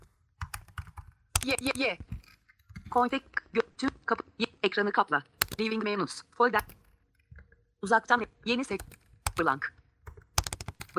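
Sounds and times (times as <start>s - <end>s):
typing on a computer keyboard: 0.0s - 3.2s, 5.4s - 5.8s, 6.6s - 6.9s, 8.2s - 10.9s
speech: 1.4s - 2.1s, 2.9s - 6.8s, 7.8s - 9.7s.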